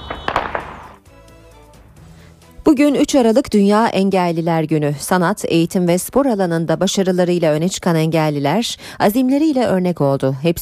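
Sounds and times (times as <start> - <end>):
howitzer artillery blasts from army batteries firing at targets: 0.0 - 1.0
speech: 2.7 - 10.6.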